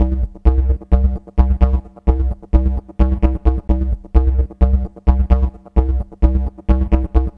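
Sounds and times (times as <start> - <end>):
bassy riff with transient shaper effect: 0.0 - 7.3.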